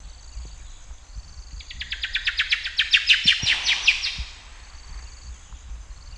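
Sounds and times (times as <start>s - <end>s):
Presbytis melalophos calling: 1.8s - 4.4s.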